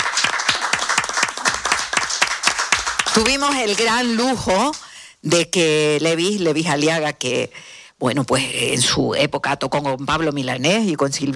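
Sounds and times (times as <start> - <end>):
crowd applauding: 0.0 - 4.8
speech: 3.2 - 11.3.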